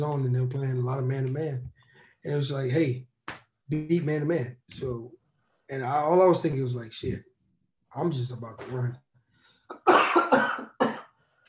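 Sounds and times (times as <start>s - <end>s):
speech: 0.0s - 3.1s, 3.7s - 7.3s, 7.9s - 9.0s
harsh raspy cough: 9.7s - 11.1s.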